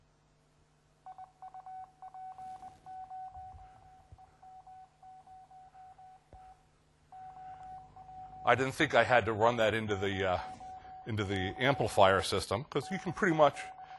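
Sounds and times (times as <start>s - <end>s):
faint hum: 0.0s - 13.9s
Morse code tones as used by ham radio operators: 1.1s - 8.7s, 10.3s - 12.2s, 12.8s - 13.9s
speech: 8.5s - 13.7s.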